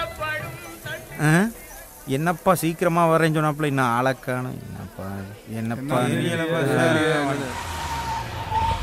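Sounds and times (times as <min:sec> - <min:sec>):
car tires hissing on the road surface: 0:00.3 - 0:08.8
speech: 0:01.2 - 0:07.7
car engine whining as the car pulls in: 0:06.2 - 0:08.8.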